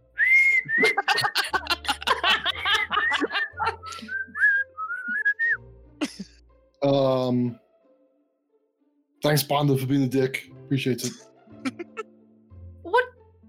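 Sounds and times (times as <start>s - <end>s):
short whistled melody as an item is opened: 0.0s - 1.6s, 2.2s - 5.7s
bursts of laughter: 0.6s - 4.2s, 11.0s - 12.0s
speech: 6.9s - 7.6s, 9.2s - 11.3s.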